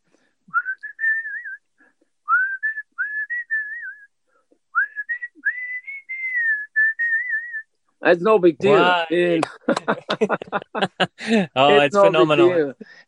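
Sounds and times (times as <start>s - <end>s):
man whistling bright tune-like phrases: 0.5s - 7.7s
speech: 8.0s - 13.0s
laughter: 8.7s - 12.7s.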